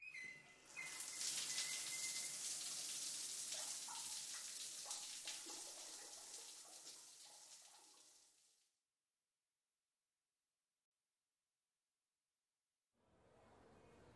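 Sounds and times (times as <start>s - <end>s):
shower water running: 0.2s - 8.6s.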